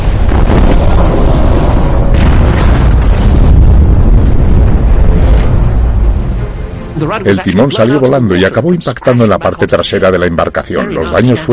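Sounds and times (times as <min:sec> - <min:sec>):
torpedo explosion against a ship: 0:00.0 - 0:07.7
churning debris and turbulence: 0:00.0 - 0:11.5
speech: 0:07.0 - 0:11.5.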